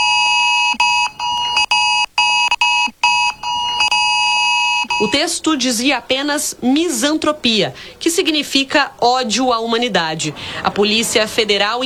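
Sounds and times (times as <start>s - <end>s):
cell phone extreme-alert tone: 0.0s - 5.3s
laughter: 4.9s - 11.8s
speech: 5.1s - 11.8s.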